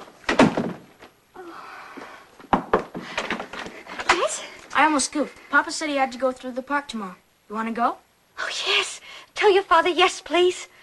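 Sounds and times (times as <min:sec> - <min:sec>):
door being shut with dull thuds and knocks: 0:00.3 - 0:00.9
speech: 0:04.8 - 0:08.8, 0:09.4 - 0:10.8.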